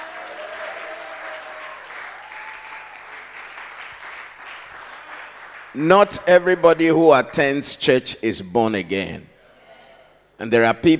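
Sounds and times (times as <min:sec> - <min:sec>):
audience applause: 0:00.0 - 0:05.8
speech: 0:05.7 - 0:09.3, 0:10.4 - 0:10.9.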